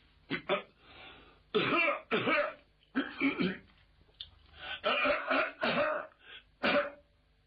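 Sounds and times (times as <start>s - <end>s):
man clearing throat deliberately to get attention: 1.6s - 3.7s, 4.8s - 7.1s
man coughing deliberately to get attention: 1.6s - 3.7s, 4.8s - 7.1s.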